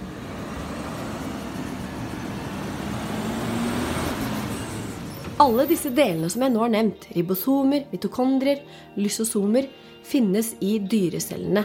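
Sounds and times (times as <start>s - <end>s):
garbage truck engine droning while driving: 0.0s - 6.5s
road noise: 0.0s - 6.6s
speech: 5.4s - 11.6s.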